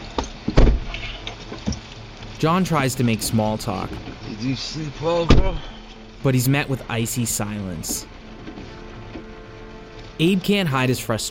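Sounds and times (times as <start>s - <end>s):
pouring rain: 0.0s - 11.2s
truck doors thunking shut: 0.2s - 1.8s, 5.2s - 5.7s
speech: 2.4s - 8.1s, 10.2s - 11.2s.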